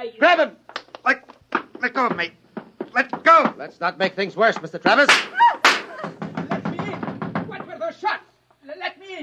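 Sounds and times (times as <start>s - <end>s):
speech: 0.0s - 1.2s, 1.9s - 2.4s, 3.0s - 5.4s
pounding on a door: 1.5s - 3.7s, 4.3s - 7.9s
agitated voices shouting: 5.0s - 6.2s.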